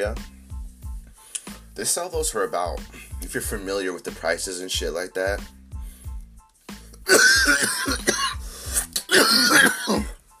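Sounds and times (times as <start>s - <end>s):
speech: 0.0s - 0.4s, 1.8s - 5.6s, 7.1s - 8.1s
harsh raspy coughing: 7.0s - 10.2s
throat clearing: 7.1s - 10.2s.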